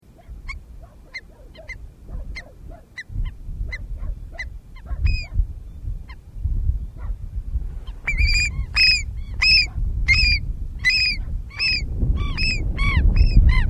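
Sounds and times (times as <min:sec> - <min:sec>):
Andean gull harsh arched calls: 0:00.2 - 0:05.4, 0:07.9 - 0:13.6.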